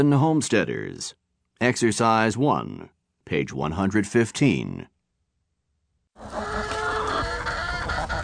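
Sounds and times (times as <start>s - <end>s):
speech: 0.0s - 4.9s
flock of chickens clucking outdoors in a backyard: 6.2s - 8.2s.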